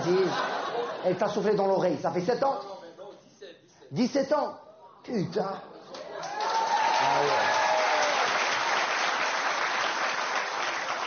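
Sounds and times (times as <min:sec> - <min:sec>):
laughter: 0:00.0 - 0:01.7
speech: 0:00.1 - 0:02.7, 0:03.9 - 0:05.7, 0:07.0 - 0:07.6
audience applause: 0:06.0 - 0:11.0.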